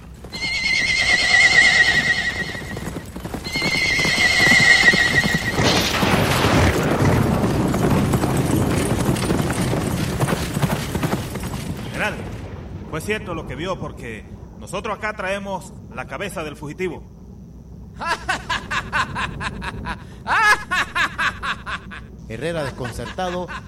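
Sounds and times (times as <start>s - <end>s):
horse hooves clip-clopping at a slow walk carrying a rider: 0.0s - 6.0s, 7.0s - 11.9s
horse whinnying: 0.3s - 6.1s
speech: 13.1s - 17.1s, 22.3s - 23.6s
laughter: 18.0s - 23.6s.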